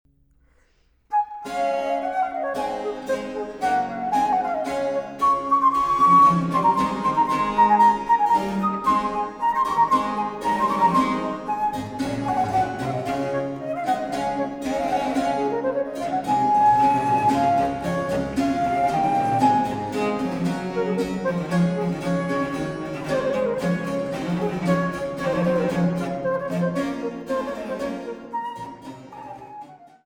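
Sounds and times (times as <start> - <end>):
solo for transverse flute and basso continuo in D major: 1.1 - 30.0.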